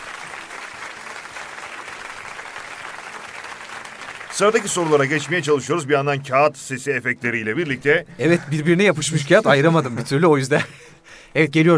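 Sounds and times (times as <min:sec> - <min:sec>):
audience applause at a live quiz event: 0:00.0 - 0:05.9
speech: 0:04.4 - 0:11.7.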